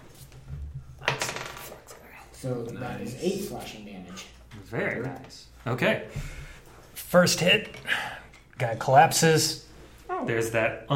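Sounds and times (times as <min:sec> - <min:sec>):
dice clattering across a hard tabletop: 0:01.0 - 0:01.8
speech: 0:02.4 - 0:06.4, 0:07.1 - 0:09.6, 0:10.2 - 0:10.9.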